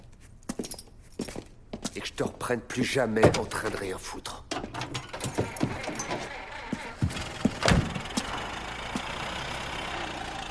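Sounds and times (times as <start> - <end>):
speech: 2.0 - 4.3
clicks and clunks of keys and a door: 3.2 - 3.9, 4.5 - 8.0
old car engine cranking and idling roughly: 4.5 - 10.4.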